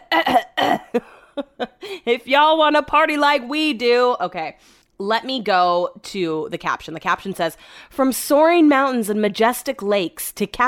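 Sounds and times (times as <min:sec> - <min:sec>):
person clearing throat: 0:00.0 - 0:01.1
speech: 0:02.1 - 0:10.6.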